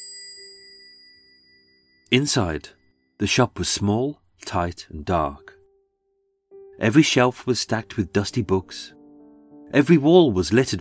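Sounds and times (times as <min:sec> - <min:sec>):
small bell above a curiosity shop door ringing: 0:00.0 - 0:03.2
speech: 0:02.1 - 0:05.5, 0:06.8 - 0:09.0, 0:09.7 - 0:10.8.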